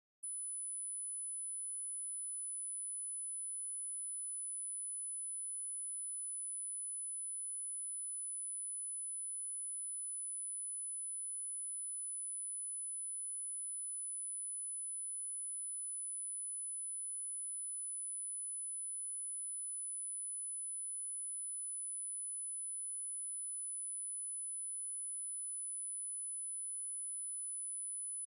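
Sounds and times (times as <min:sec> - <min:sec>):
9999 Hz sine wave at -40 dB: 0:00.3 - 0:28.3.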